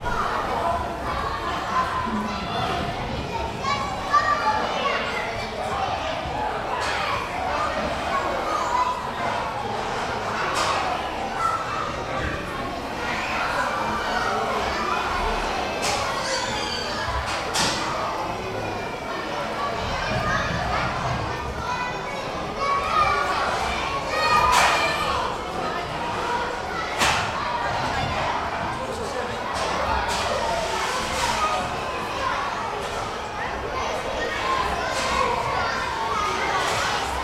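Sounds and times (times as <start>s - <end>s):
ambience of a children's indoor play park in the UK: 0.0s - 37.2s.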